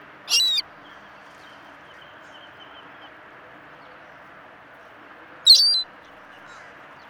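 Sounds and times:
Ring-billed gull Larus delawarensis harsh calls: 0.3s - 0.6s, 5.5s - 5.8s.

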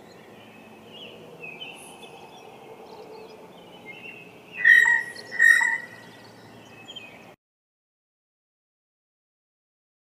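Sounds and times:
soft twittering of other birds: 0.0s - 7.4s
blue jay Cyanocitta cristata giving ringing calls: 4.0s - 6.2s.

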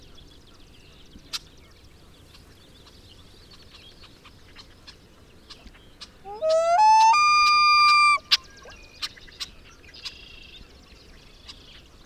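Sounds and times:
common loon Gavia immer wailing: 6.3s - 8.2s.

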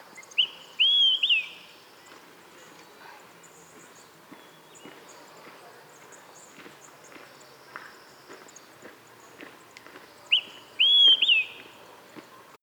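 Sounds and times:
Olive-sided Flycatcher Contopus cooperi calling: 0.2s - 1.8s, 10.3s - 11.7s.

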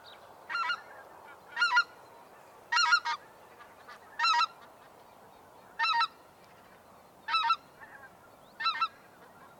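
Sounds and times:
Greater White-fronted Goose Anser albifrons calling: 0.5s - 1.9s, 2.7s - 4.8s, 5.8s - 6.2s, 7.3s - 9.5s.

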